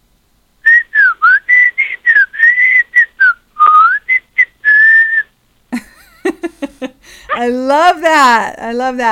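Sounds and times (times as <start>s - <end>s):
person whistling a quick lively tune: 0.7s - 5.3s
speech: 7.4s - 9.1s.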